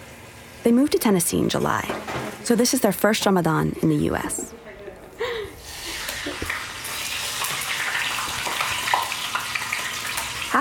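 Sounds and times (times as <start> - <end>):
speech: 0.6 - 4.5
meat frying in a pan in Nashville, Tennessee: 5.6 - 10.6.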